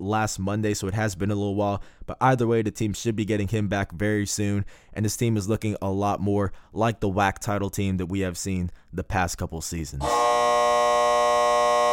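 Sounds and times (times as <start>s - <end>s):
speech: 0.0s - 10.6s
loud steady segment-ending electronic buzzer: 10.0s - 11.9s.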